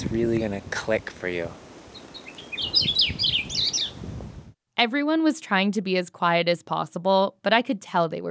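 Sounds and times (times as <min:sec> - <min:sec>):
faint outdoor background: 0:00.0 - 0:08.2
speech: 0:00.2 - 0:01.7, 0:02.6 - 0:03.4, 0:04.8 - 0:08.2
bird calling with bright high chirps and warbling notes: 0:01.9 - 0:04.1.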